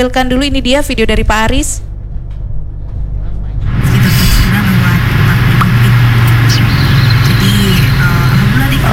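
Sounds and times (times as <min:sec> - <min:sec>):
speech: 0:00.0 - 0:01.9
deep steady rumble of engines and traffic from a long queue of vehicles: 0:02.2 - 0:08.9.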